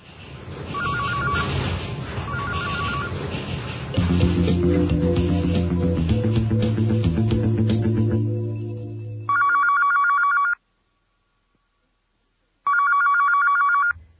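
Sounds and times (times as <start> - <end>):
telephone ringing with electronic trill: 0.8 - 1.5, 2.3 - 3.1, 9.3 - 10.6, 12.7 - 14.0
layered musical tone: 4.0 - 9.3.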